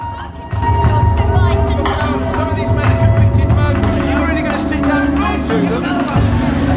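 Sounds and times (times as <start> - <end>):
crowd of journalists talking and calling out: 0.0 - 6.7
car engine rumbling at low speed driven towards prison gates: 0.6 - 6.7.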